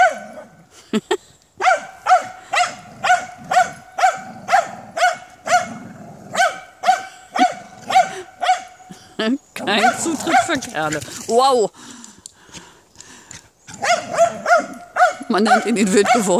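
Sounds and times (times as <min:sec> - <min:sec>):
dog barking: 0:00.0 - 0:00.5, 0:01.6 - 0:08.8, 0:09.8 - 0:10.6, 0:13.7 - 0:16.3
speech: 0:00.9 - 0:01.3, 0:09.2 - 0:11.8, 0:15.3 - 0:16.3
dog yelping: 0:01.6 - 0:08.8, 0:13.7 - 0:16.3.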